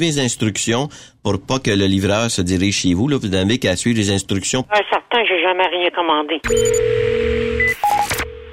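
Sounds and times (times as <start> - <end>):
speech: 0.0 - 8.2
steady electronic telephone tone during call transfer: 6.4 - 8.5.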